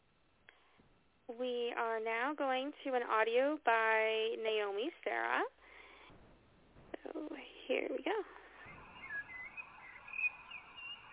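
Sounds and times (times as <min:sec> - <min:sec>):
steady soft hiss of noise: 0:00.0 - 0:11.1
speech: 0:01.3 - 0:05.6, 0:07.0 - 0:08.4
faint birdsong with thin high chirps: 0:05.6 - 0:11.1.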